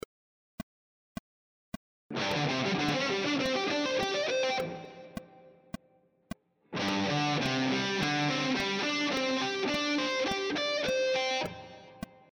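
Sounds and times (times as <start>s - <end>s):
guitar playing triad arpeggio sequences: 2.1s - 5.5s, 6.8s - 12.0s.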